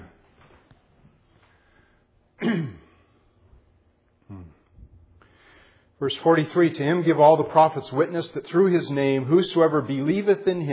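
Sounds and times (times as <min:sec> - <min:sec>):
man clearing his throat while reading scripture aloud: 0:02.4 - 0:03.2, 0:04.3 - 0:04.7
speech: 0:06.0 - 0:10.7.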